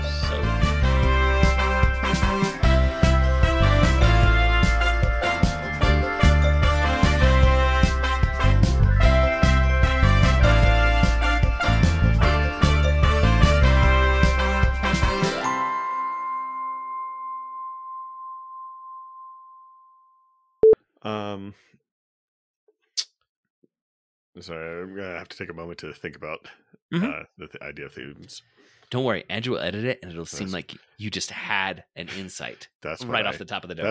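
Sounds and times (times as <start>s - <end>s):
podcast theme music with a steady driving beat: 0.0s - 15.9s
speech: 24.4s - 33.8s.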